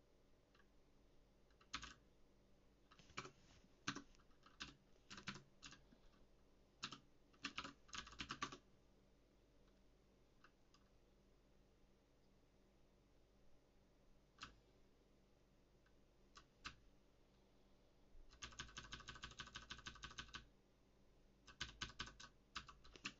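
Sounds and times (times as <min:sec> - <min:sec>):
typing on a mechanical keyboard with Cherry MX Blue keys: 0:01.5 - 0:02.0, 0:03.9 - 0:05.8, 0:06.8 - 0:08.6, 0:18.3 - 0:20.5, 0:21.5 - 0:23.1.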